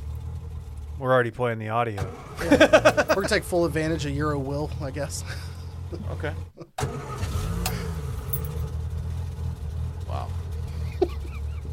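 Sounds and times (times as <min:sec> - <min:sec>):
car engine starting and running in a parking lot: 0:00.0 - 0:01.2, 0:01.9 - 0:11.7
speech: 0:01.0 - 0:07.0
laughter: 0:02.4 - 0:04.0, 0:10.7 - 0:11.7.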